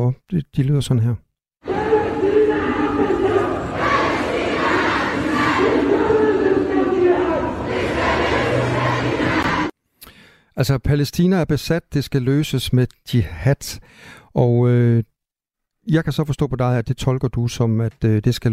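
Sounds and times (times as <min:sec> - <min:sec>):
speech: 0:00.0 - 0:01.2, 0:10.6 - 0:15.1, 0:15.9 - 0:18.5
large demonstration crowd chanting slogans in unison: 0:01.6 - 0:09.7.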